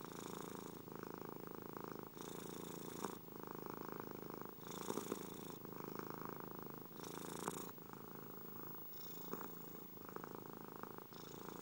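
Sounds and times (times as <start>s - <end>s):
domestic cat purring: 0.0s - 11.6s.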